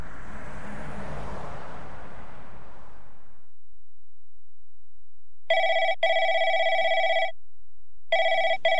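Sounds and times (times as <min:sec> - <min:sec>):
broad rumbling noise: 0:00.0 - 0:03.5
telephone ringing in electronic bursts: 0:05.5 - 0:07.4, 0:08.1 - 0:08.7.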